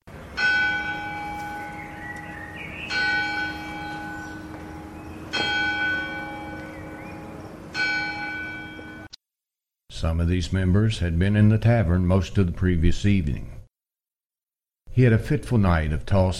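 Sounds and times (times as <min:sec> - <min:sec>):
church bell tolling: 0:00.3 - 0:09.1
speech: 0:10.0 - 0:13.6, 0:15.0 - 0:16.3.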